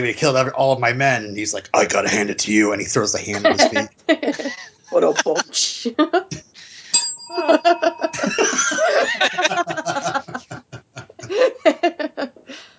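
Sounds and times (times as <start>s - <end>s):
speech: 0.0s - 10.3s
breathy rhythmic chuckling and laughter: 3.4s - 5.4s, 6.2s - 12.7s
small bell ringing with a bright sustained chime: 6.9s - 9.2s.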